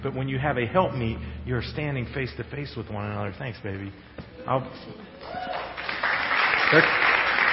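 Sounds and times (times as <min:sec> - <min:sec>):
speech: 0:00.0 - 0:05.9, 0:06.7 - 0:07.1
audience applause: 0:05.2 - 0:07.5.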